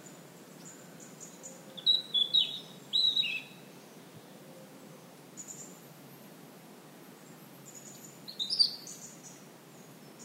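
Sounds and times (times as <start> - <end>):
European robin Erithacus rubecula singing: 0.0 - 4.0, 7.2 - 10.2.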